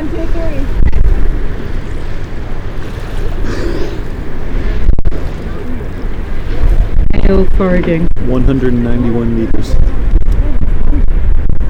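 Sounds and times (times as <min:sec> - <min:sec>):
wind buffeting across the microphone outdoors: 0:00.0 - 0:11.6
speech: 0:07.3 - 0:10.1.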